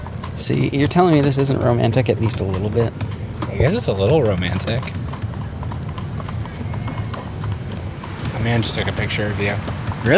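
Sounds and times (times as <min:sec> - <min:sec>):
horse hooves clip-clopping while pulling a carriage: 0:00.0 - 0:10.1
voices: 0:00.2 - 0:10.1
speech: 0:00.4 - 0:05.0, 0:08.4 - 0:10.1.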